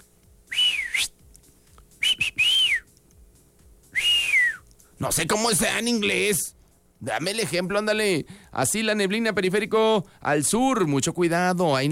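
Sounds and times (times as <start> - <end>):
person whistling melodic phrases: 0.5 - 1.2, 2.0 - 2.9, 3.9 - 4.7
speech: 5.0 - 11.9.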